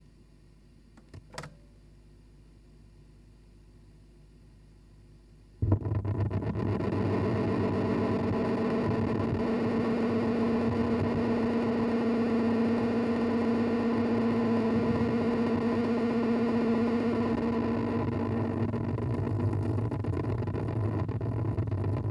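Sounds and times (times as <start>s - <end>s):
tape recorder playback through 19 cm loudspeaker: 5.6s - 22.0s.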